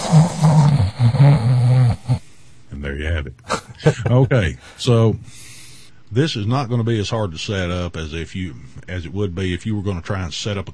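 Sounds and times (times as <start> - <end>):
snoring: 0.0 - 2.2
speech: 3.3 - 5.4, 6.1 - 10.7.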